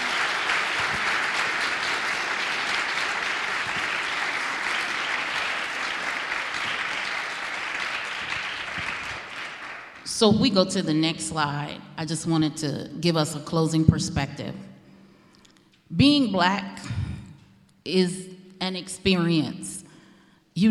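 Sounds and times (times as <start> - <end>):
audience applause celebrating a speaker after a talk: 0.0 - 10.1
speech: 10.2 - 14.7, 15.9 - 17.0, 17.8 - 19.8.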